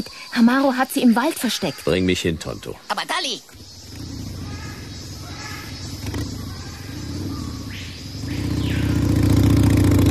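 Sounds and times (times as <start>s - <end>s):
speech: 0.0s - 3.6s
motorcycle engine idling and revving: 3.5s - 10.0s.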